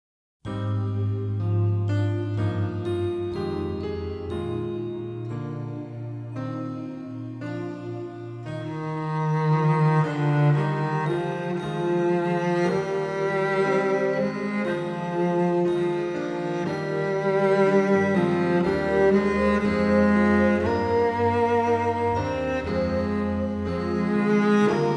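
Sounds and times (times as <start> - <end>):
ambient cello: 0.6 - 24.9.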